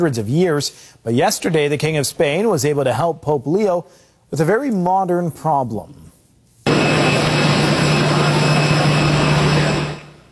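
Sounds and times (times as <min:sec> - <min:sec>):
speech: 0:00.0 - 0:06.1
private jet airplane engine roaring with a high whining tone: 0:06.7 - 0:10.3.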